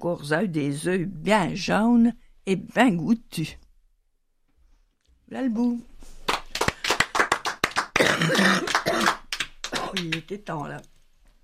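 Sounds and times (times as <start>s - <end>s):
speech: 0.1s - 3.6s, 5.3s - 5.9s, 8.2s - 9.2s, 9.9s - 10.9s
dense applause of several people clapping: 6.2s - 10.8s
harsh coughing: 8.0s - 10.0s.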